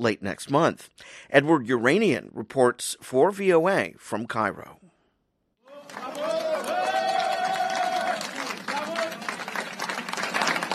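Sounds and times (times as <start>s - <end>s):
speech: 0.0s - 4.9s
crowd noise: 5.6s - 10.7s
voice rising over the clapping: 5.6s - 10.7s
audience applause at peace talks: 5.7s - 10.7s.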